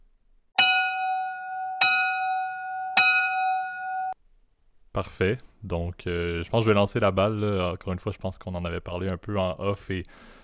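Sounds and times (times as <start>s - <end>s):
bell ringing: 0.6s - 4.2s
speech: 5.0s - 10.4s.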